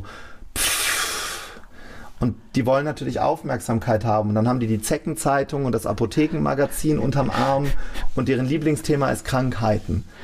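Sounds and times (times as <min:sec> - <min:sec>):
voice imitating the long drawn-out exhale of someone entering a room: 0:00.0 - 0:02.0
speech: 0:02.2 - 0:10.2.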